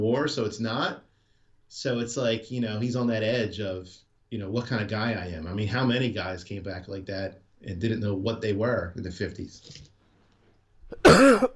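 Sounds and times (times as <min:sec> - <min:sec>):
speech: 0:00.0 - 0:01.1, 0:01.7 - 0:09.9
harsh raspy cough: 0:10.9 - 0:11.5.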